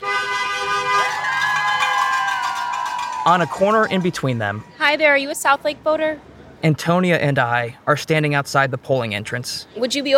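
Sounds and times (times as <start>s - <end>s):
passing car horns honking in support near a polling entrance: 0.0s - 5.1s
traffic: 0.0s - 10.1s
speech: 3.2s - 10.1s.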